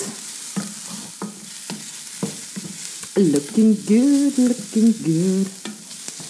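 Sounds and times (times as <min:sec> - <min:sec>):
utensil stirring and scraping onions in a frying pan: 0:00.0 - 0:03.2, 0:05.6 - 0:06.2
onions sizzling in a frying pan: 0:00.0 - 0:06.2
speech: 0:03.2 - 0:05.6.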